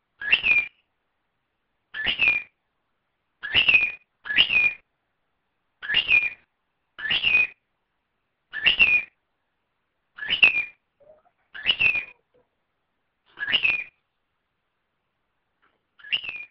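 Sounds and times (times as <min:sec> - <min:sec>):
bird peeping: 0:00.2 - 0:00.9, 0:01.9 - 0:02.6, 0:03.4 - 0:04.8, 0:05.8 - 0:07.6, 0:10.2 - 0:12.5, 0:13.3 - 0:14.1, 0:16.0 - 0:16.4.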